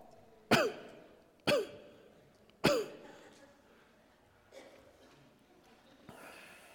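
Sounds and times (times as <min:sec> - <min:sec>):
breathy throat-clearing: 0:00.5 - 0:02.0, 0:02.6 - 0:03.4
harsh forceful hacking coughs: 0:00.5 - 0:02.0, 0:02.6 - 0:03.3.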